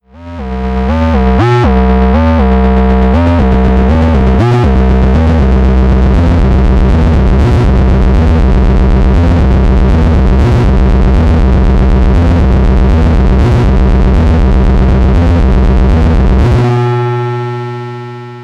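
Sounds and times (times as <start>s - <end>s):
noisy interlude: 0.2s - 18.4s.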